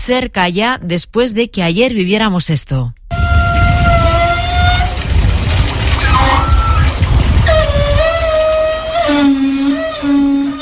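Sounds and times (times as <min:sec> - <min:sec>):
speech: 0:00.0 - 0:03.0
beach shower pipes squealing: 0:03.1 - 0:10.5
water rushing from an outdoor beach shower: 0:03.8 - 0:10.5.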